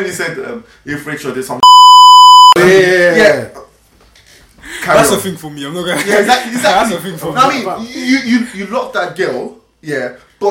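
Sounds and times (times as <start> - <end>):
speech: 0.0 - 1.6, 2.6 - 3.6, 4.8 - 10.4
loud steady censor bleep: 1.6 - 2.6.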